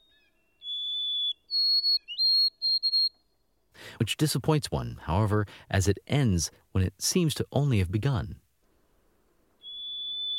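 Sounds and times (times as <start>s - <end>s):
white-throated sparrow whistled song: 0.0s - 3.4s, 9.6s - 10.3s
speech: 3.9s - 8.4s.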